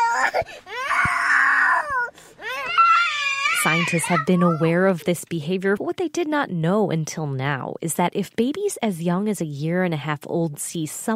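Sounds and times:
upset toddler crying: 0.0 - 4.8
speech: 0.3 - 1.1, 3.6 - 11.1.

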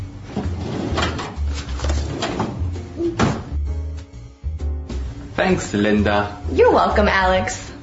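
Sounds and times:
sliding rattles of a ruler in a drawer: 0.3 - 3.4
desk drawer holding a ruler opening and closing: 0.3 - 3.6
speech: 5.5 - 7.7.

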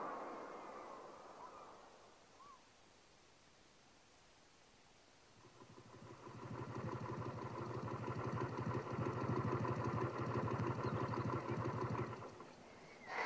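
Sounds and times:
motorcycle engine idling: 5.4 - 12.9.

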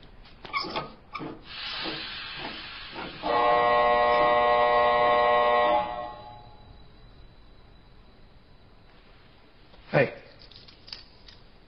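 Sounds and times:
pressurized CO2 gas released in a hiss: 0.9 - 9.7.

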